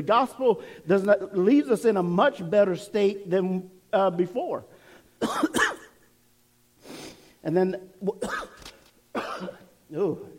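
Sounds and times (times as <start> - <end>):
speech: 0.0 - 5.7, 7.4 - 8.6, 9.4 - 10.3
harsh coughs: 5.2 - 6.0, 8.1 - 9.7.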